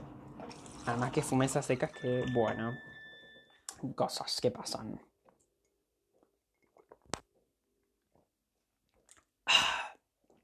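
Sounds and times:
speech: 0:00.8 - 0:02.9, 0:03.8 - 0:05.1
person drinking water: 0:06.1 - 0:08.3, 0:08.9 - 0:10.4
wet mouth clicks: 0:08.9 - 0:09.3.

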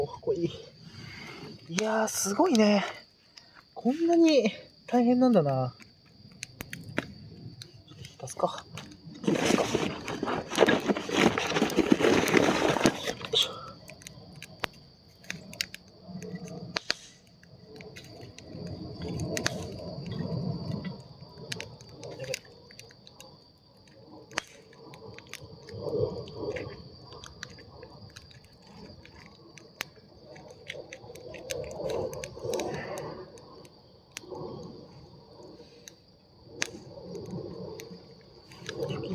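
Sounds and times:
speech: 0:00.0 - 0:00.7, 0:01.7 - 0:03.0, 0:03.8 - 0:05.8, 0:08.2 - 0:11.6
firewood being handled and broken for a campfire at a campsite: 0:00.9 - 0:39.1.

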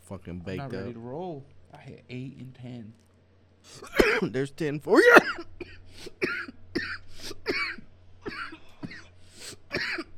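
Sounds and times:
speech: 0:00.1 - 0:06.4
person coughing hard in a coughing fit: 0:03.8 - 0:04.3, 0:04.9 - 0:10.1.

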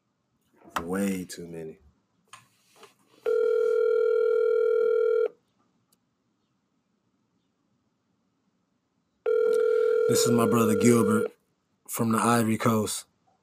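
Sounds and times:
speech: 0:00.8 - 0:01.8, 0:10.1 - 0:13.1
outgoing phone call electronic ring tone: 0:03.2 - 0:05.4, 0:09.3 - 0:11.3.

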